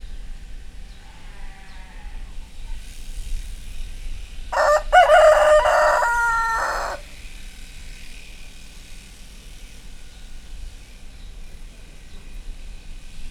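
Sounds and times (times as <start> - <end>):
Hungarian hen clucking at Miskolc zoo: 4.6 - 7.0.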